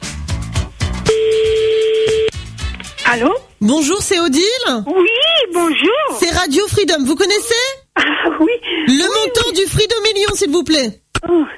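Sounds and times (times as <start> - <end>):
telephone ringback tone on a call: 1.1 - 2.3
speech: 3.1 - 11.5.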